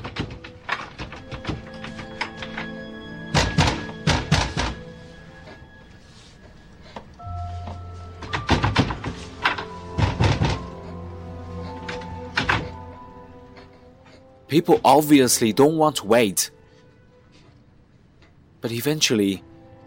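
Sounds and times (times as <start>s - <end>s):
faint tonal background: 0.0s - 19.8s
heavy pounding on a door: 3.3s - 4.8s, 9.9s - 10.8s
speech: 14.6s - 16.6s, 18.6s - 19.5s.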